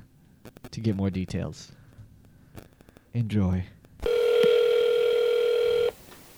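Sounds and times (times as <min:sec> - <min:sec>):
speech: 0:00.4 - 0:01.8, 0:03.1 - 0:03.8
electronic telephone tone of a call to a grocery store: 0:04.0 - 0:06.0
telephone line hiss: 0:04.0 - 0:06.3.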